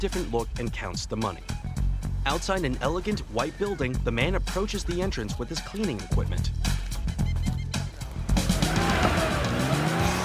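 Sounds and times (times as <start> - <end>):
speech: 0.0 - 1.6, 2.2 - 6.8
silver convertible sports car engine roar: 7.9 - 10.2
tires squealing and skidding across pavement: 8.1 - 10.2.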